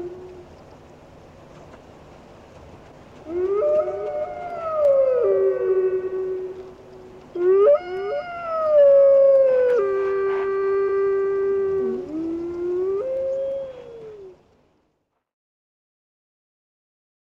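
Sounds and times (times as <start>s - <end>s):
grey wolf howling: 0.0s - 0.5s, 3.2s - 14.4s.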